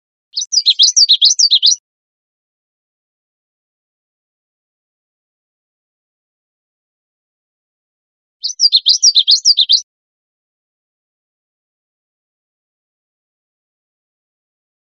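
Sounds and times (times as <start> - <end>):
common yellowthroat rolling high phrases: 0.4 - 1.8, 8.4 - 9.8.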